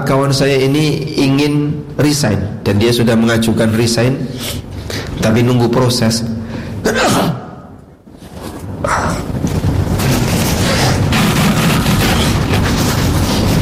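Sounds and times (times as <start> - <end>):
speech: 0.0 - 7.4
single loud sneeze: 6.8 - 7.7
steady heavy rumbling noise: 8.1 - 13.5.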